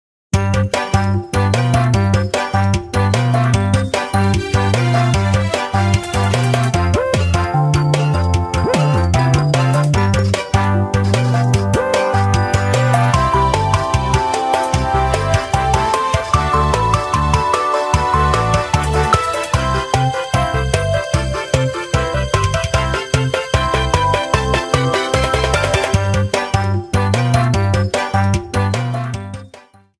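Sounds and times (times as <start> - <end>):
board start theme music: 0.4 - 29.6.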